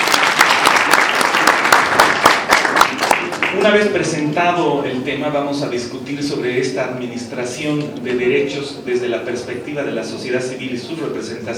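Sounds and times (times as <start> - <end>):
audience applause at a forum on human rights and community radio: 0.0 - 3.6
speech: 3.6 - 11.5.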